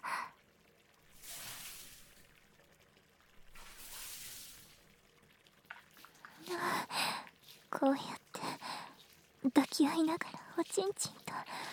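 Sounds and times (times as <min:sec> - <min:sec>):
water splashing and dribbling: 0:00.0 - 0:11.7
running water rinsing off soap foam: 0:01.0 - 0:02.3, 0:03.4 - 0:05.0, 0:05.6 - 0:11.7
speech: 0:07.8 - 0:08.2, 0:09.5 - 0:11.6.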